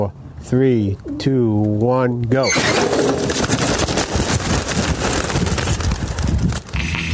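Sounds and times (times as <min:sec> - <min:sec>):
speech: 0:00.0 - 0:03.6
flutter of many racing pigeon wings taking off from a trailer: 0:02.8 - 0:07.0.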